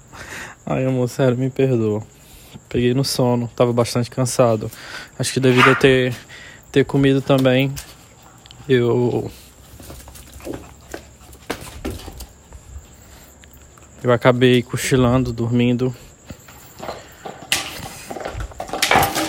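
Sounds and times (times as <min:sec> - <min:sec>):
speech: 0:00.7 - 0:07.9, 0:08.7 - 0:09.4, 0:14.0 - 0:16.1
dogs knocking a plastic bottle around: 0:16.8 - 0:19.2.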